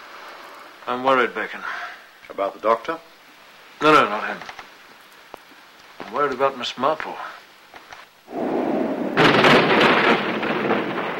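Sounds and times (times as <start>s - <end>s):
steady hiss: 0.0s - 11.1s
speech: 0.8s - 3.1s, 3.8s - 4.6s, 6.1s - 7.4s
thunder rumbling in a nighttime storm with lightning: 8.3s - 11.1s.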